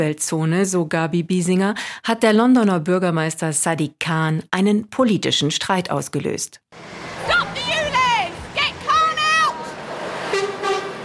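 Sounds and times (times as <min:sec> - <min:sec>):
speech: 0:00.0 - 0:07.5
traffic noise on a busy main road in outer London: 0:06.7 - 0:11.0
car horns honking in support of protesters in outer London: 0:06.8 - 0:11.0.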